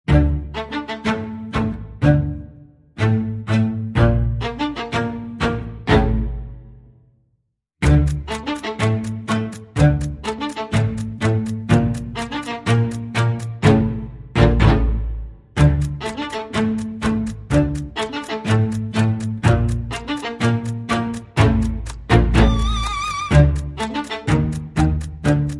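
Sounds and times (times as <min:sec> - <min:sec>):
strings: 0:00.1 - 0:07.0, 0:07.8 - 0:25.5
percussion: 0:07.8 - 0:25.5.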